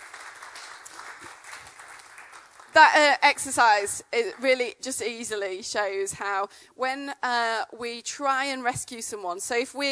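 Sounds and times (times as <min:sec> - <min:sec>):
audience applause after a group exercise: 0:00.0 - 0:02.8
speech: 0:02.8 - 0:09.8.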